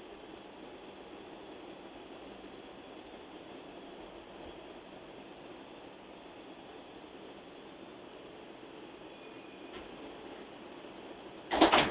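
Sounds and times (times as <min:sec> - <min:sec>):
Brooklyn-bound express subway train running: 0:00.0 - 0:11.8
subway train doors sliding: 0:11.4 - 0:11.8.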